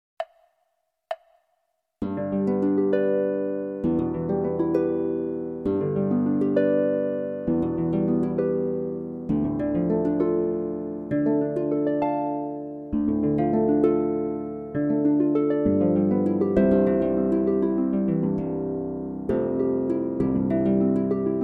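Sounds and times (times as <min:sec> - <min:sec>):
harp playing: 0:02.0 - 0:21.4.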